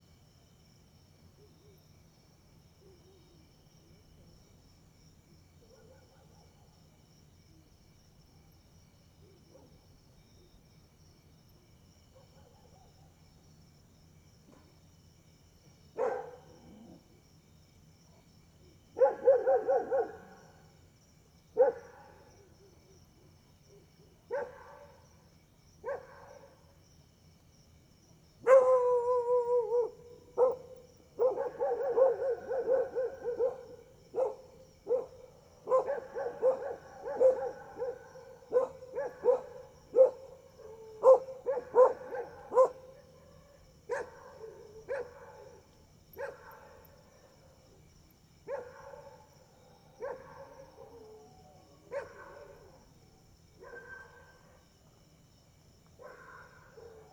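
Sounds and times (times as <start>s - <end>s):
cricket chirping at night: 0.0s - 57.1s
dogs barking at night: 16.0s - 16.9s, 19.0s - 20.4s, 21.6s - 22.2s, 24.3s - 25.0s, 28.5s - 43.2s, 43.9s - 46.9s, 48.5s - 49.3s, 50.0s - 51.2s, 51.9s - 52.7s, 53.6s - 54.3s, 56.0s - 57.1s.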